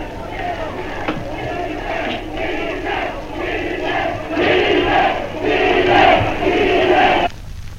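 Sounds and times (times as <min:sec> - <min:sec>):
large football stadium crowd cheering and shouting for Chile during a match: 0:00.0 - 0:07.3
laughter: 0:00.0 - 0:07.3.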